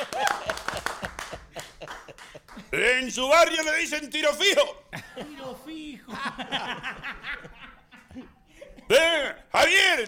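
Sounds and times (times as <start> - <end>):
crowd applauding: 0.0 - 2.8
laughter: 0.0 - 3.0, 4.9 - 9.3
speech: 2.7 - 7.3.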